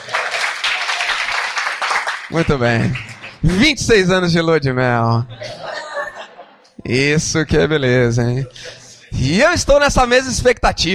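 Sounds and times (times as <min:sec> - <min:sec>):
crowd applauding: 0:00.0 - 0:03.6
speech: 0:02.3 - 0:05.6, 0:06.9 - 0:10.9
laughter: 0:05.2 - 0:07.0.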